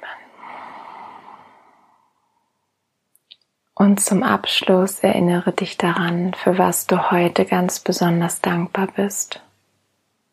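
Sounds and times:
slow deep breath during a guided breathing exercise: 0.0 - 2.7
speech: 3.8 - 9.4.

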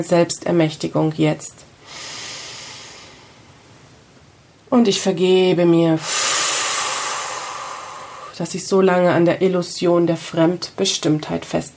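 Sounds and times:
speech: 0.0 - 2.0, 4.7 - 6.3, 8.4 - 11.7
deep breath in during a guided relaxation exercise: 1.8 - 3.6, 6.0 - 8.4.

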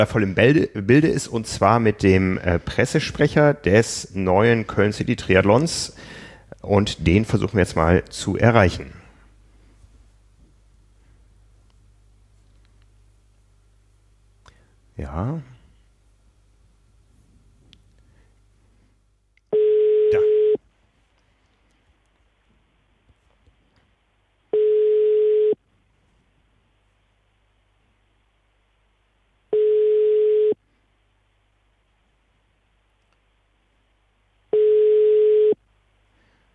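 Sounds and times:
speech: 0.0 - 9.0, 15.0 - 15.5
telephone line busy signal beeps: 19.5 - 20.6, 24.6 - 25.6, 29.5 - 30.6, 34.6 - 35.6.

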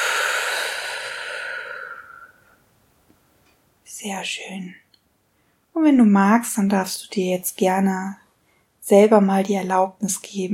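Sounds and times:
slow breathy exhale during a guided breathing exercise: 0.0 - 2.6
speech: 4.0 - 4.8, 5.8 - 8.2, 8.9 - 10.5.

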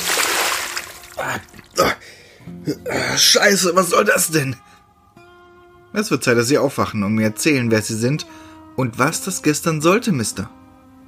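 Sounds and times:
bucket of water splashed onto a person: 0.0 - 1.7
person caught off guard sputtering gasps and coughs: 1.1 - 3.2
speech: 1.2 - 4.7, 6.0 - 10.6.

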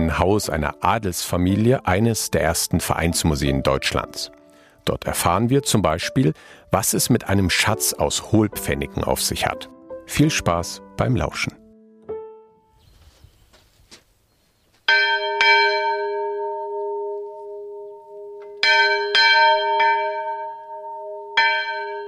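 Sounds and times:
speech: 0.1 - 11.6
small church bell rung by rope at an open-air museum: 14.9 - 22.0.

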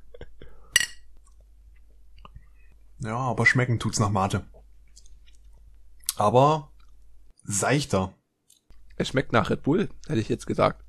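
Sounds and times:
drinks glasses clinking together in a toast: 0.8 - 1.1
speech: 3.0 - 4.6, 6.2 - 6.7, 7.4 - 8.2, 9.0 - 10.8.

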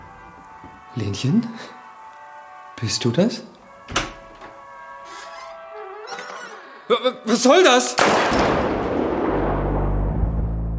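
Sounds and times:
speech: 0.9 - 1.8, 2.8 - 4.0, 6.9 - 8.7
gunshot in an audio drama: 8.0 - 10.6.

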